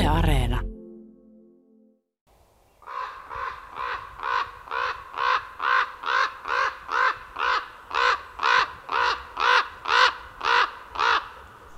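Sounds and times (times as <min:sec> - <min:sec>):
speech: 0:00.1 - 0:00.7
raven croaking harsh calls: 0:02.9 - 0:11.5.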